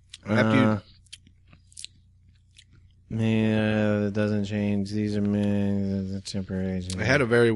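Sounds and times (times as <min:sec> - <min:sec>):
person humming: 0:00.2 - 0:00.8
speech: 0:00.2 - 0:00.9, 0:04.1 - 0:07.5.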